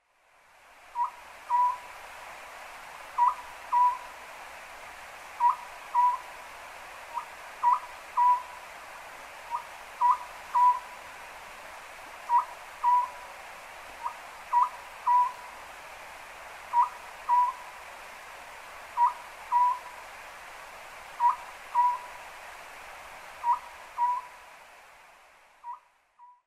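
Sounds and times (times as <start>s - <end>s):
Japanese scops owl calling: 1.0s - 1.8s, 3.2s - 4.1s, 5.4s - 6.3s, 7.1s - 8.6s, 9.5s - 10.9s, 12.3s - 13.2s, 14.0s - 15.5s, 16.7s - 17.6s, 19.0s - 19.9s, 21.2s - 22.1s, 23.4s - 24.4s.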